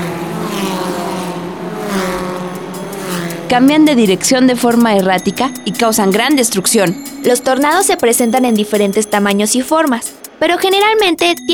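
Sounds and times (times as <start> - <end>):
Formula 1 racing car speeding past: 0.0 - 5.8
speech: 3.5 - 11.5.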